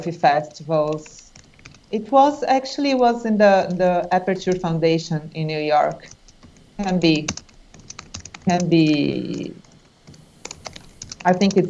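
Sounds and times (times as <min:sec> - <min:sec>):
speech: 0:00.0 - 0:01.3, 0:01.9 - 0:06.2, 0:06.8 - 0:07.4, 0:08.5 - 0:09.6, 0:11.2 - 0:11.6
computer keyboard typing: 0:00.9 - 0:02.0, 0:02.8 - 0:05.0, 0:05.8 - 0:11.6.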